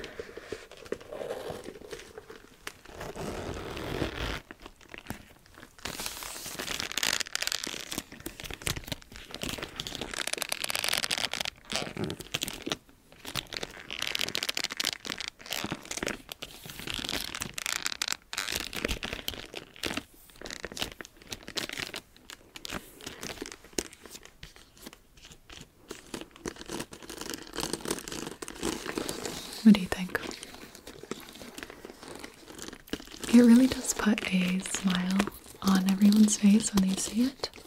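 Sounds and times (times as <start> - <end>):
statement bag being zipped up: 0.0 - 4.6, 26.7 - 37.6
statement bag rustling and crinkling while handled: 0.0 - 37.6
speech: 33.4 - 35.4, 36.3 - 37.6.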